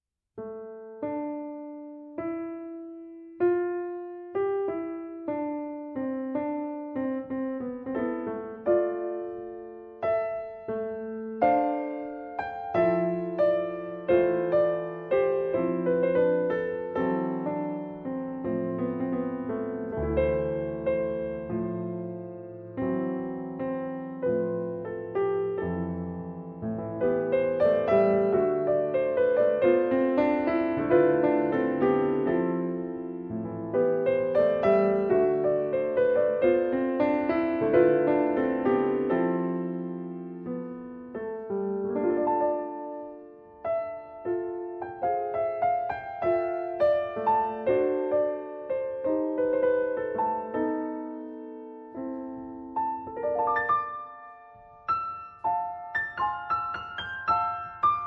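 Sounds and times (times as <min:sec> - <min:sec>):
slow piano piece played by a concert pianist: 0:00.4 - 0:58.0.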